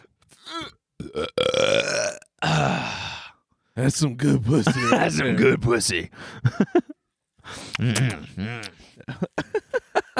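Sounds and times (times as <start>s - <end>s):
loud belch: 0.6s - 2.8s
speech: 3.8s - 6.8s, 7.8s - 9.3s.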